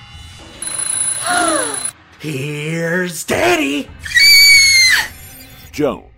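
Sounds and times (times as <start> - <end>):
old-fashioned alarm clock ringing: 0.6 - 2.0
speech: 2.2 - 4.2, 5.8 - 6.1.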